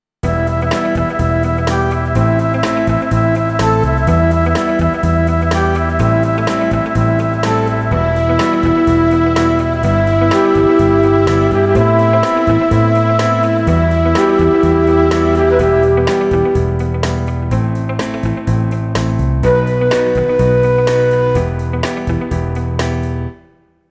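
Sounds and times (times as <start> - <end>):
rock pop ballad rhythm: 0.2 - 23.3.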